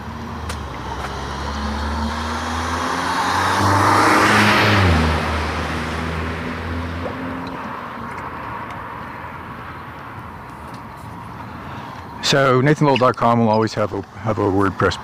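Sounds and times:
old Cadillac car engine passing: 0.0 - 9.8
speech: 12.3 - 15.0.

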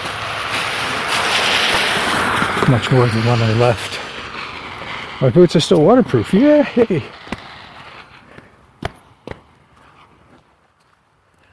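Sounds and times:
meltwater running outdoors: 0.0 - 7.9
speech: 2.6 - 4.0, 5.2 - 7.2.

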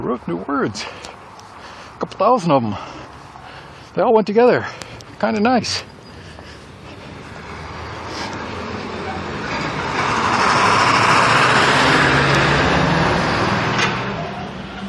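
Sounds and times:
speech: 0.0 - 1.2, 2.0 - 3.0, 4.0 - 5.9
delivery truck driving past with engine and road rumble: 5.7 - 14.8.

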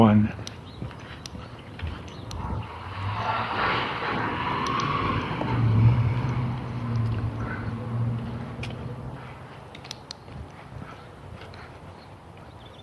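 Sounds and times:
speech: 0.0 - 0.6
delivery truck driving past with engine rumble and tire noise: 2.2 - 9.6.

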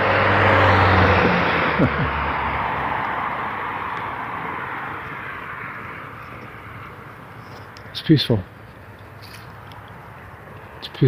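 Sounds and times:
car driving past: 0.0 - 7.7
speech: 1.8 - 2.0, 8.1 - 8.5.

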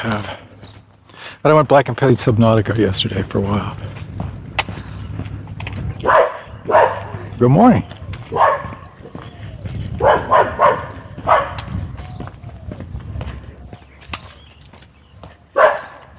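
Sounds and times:
speech: 0.0 - 0.5, 1.4 - 4.0, 7.4 - 8.0
low rumbling background: 2.3 - 14.6
small dog barking: 6.0 - 7.3, 8.3 - 9.2, 10.0 - 11.8, 15.5 - 16.1.

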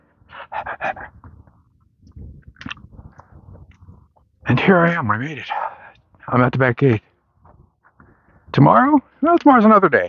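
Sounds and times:
heavy rapid panting: 0.0 - 4.1, 5.4 - 6.2
speech: 4.5 - 5.6, 6.3 - 7.1, 8.6 - 10.0.

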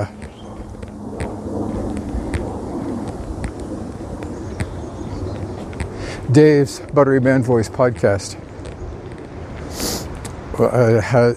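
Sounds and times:
strong cold wind buffeting the microphone: 0.0 - 11.3
speech: 6.3 - 8.4, 10.6 - 11.3.

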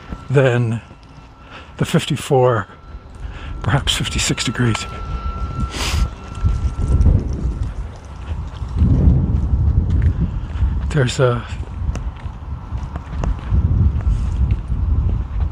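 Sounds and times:
brief higher chirping sound: 0.0 - 7.8
gusty morning wind buffeting the microphone: 0.0 - 15.4
speech: 0.3 - 0.9, 1.8 - 2.8, 3.6 - 6.1, 11.0 - 11.6.

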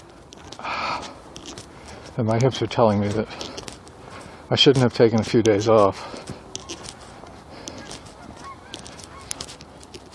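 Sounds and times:
speech: 2.2 - 3.5, 4.5 - 6.3
geese honking overhead: 6.6 - 9.5.

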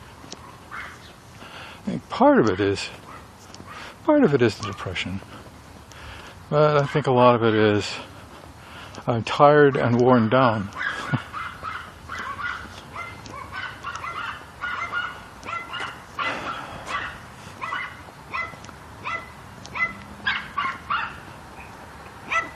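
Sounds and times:
small dogs yapping: 0.2 - 1.2, 3.0 - 4.0, 10.7 - 22.5
speech: 1.8 - 3.0, 4.1 - 5.4, 6.5 - 8.1, 9.0 - 10.8.

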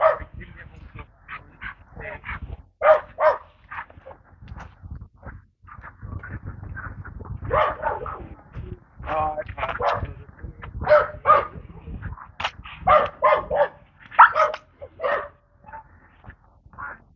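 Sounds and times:
dog behind a fence barking at a passing husky on a leash: 0.0 - 0.4, 1.6 - 4.2, 7.4 - 8.3, 9.7 - 10.1, 10.8 - 11.6, 12.8 - 16.0.

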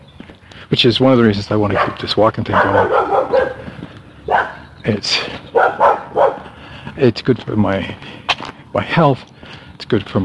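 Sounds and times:
speech: 0.6 - 3.6, 4.8 - 5.9, 7.0 - 10.2
dog barking: 1.7 - 3.7, 4.3 - 4.6, 5.5 - 6.5.

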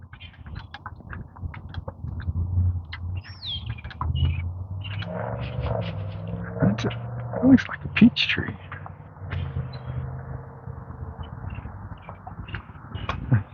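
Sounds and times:
steady low rumble: 1.1 - 13.5
flock of boat-tailed and common grackles calling: 3.2 - 13.5
speech: 6.8 - 8.7.

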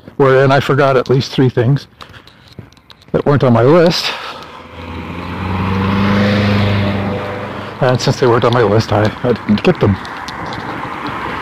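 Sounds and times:
speech: 0.2 - 2.2, 3.1 - 4.4, 7.8 - 10.2
cars driving past: 3.7 - 11.4.

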